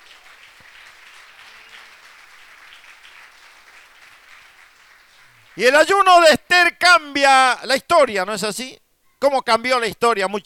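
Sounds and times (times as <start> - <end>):
church congregation applauding during a service: 0.0 - 6.3
speech: 5.6 - 10.4.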